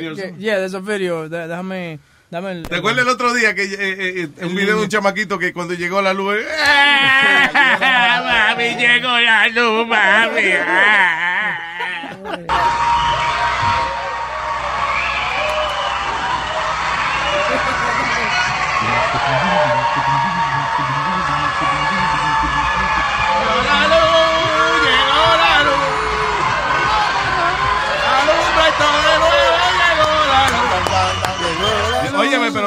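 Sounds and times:
speech: 0:00.0 - 0:11.6
laughter: 0:06.4 - 0:13.3, 0:17.1 - 0:32.6
schoolchildren and teachers cheering and shouting as they run out of classrooms: 0:06.6 - 0:09.1, 0:10.0 - 0:32.6.

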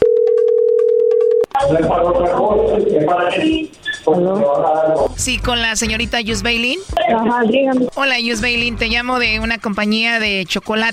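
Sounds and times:
telephone call ringing tone: 0:00.0 - 0:01.7
speech: 0:01.7 - 0:10.9.

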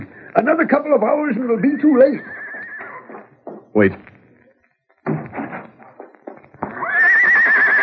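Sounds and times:
speech: 0:00.4 - 0:02.4, 0:03.7 - 0:04.1
horse neighing: 0:01.6 - 0:03.3, 0:06.6 - 0:07.8.

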